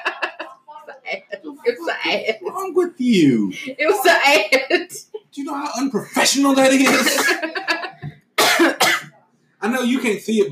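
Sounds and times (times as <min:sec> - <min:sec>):
laughter: 0:00.0 - 0:02.9, 0:05.7 - 0:08.1
speech: 0:01.9 - 0:07.5, 0:09.8 - 0:10.5
person coughing without covering the mouth: 0:06.8 - 0:07.6, 0:08.4 - 0:09.1.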